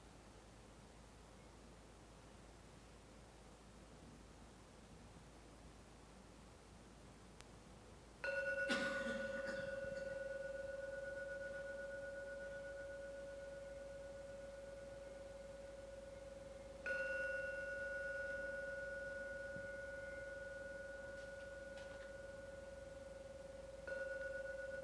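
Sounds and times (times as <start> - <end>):
meditation gong struck and ringing: 8.2 - 24.8.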